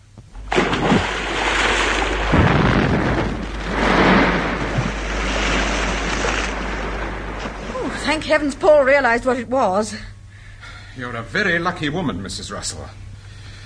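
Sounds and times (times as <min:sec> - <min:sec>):
case thrown into a river splashing: 0:00.4 - 0:08.0
speech: 0:08.1 - 0:10.1, 0:11.0 - 0:13.0.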